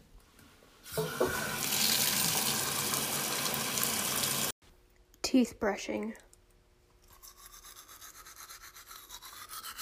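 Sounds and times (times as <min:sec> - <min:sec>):
shower water running: 0:00.9 - 0:04.5
speech: 0:05.3 - 0:06.3.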